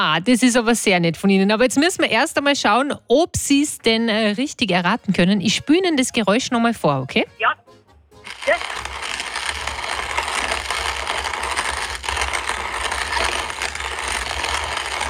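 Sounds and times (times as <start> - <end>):
speech: 0.0 - 7.6
hand-operated coffee grinder grinding: 8.2 - 15.0.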